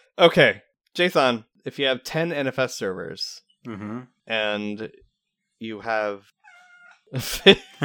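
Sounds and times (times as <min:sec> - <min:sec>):
speech: 0:00.2 - 0:05.0, 0:05.6 - 0:06.4, 0:07.1 - 0:07.8
cat yowling: 0:06.4 - 0:07.0
laughter: 0:07.2 - 0:07.8.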